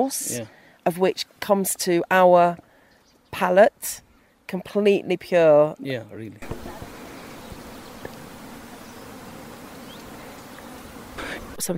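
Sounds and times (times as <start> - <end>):
speech: 0.0 - 2.7, 3.3 - 6.6, 11.6 - 11.7
hissy outdoor background: 0.0 - 11.7
bees buzzing while gathering in nature: 6.4 - 11.7.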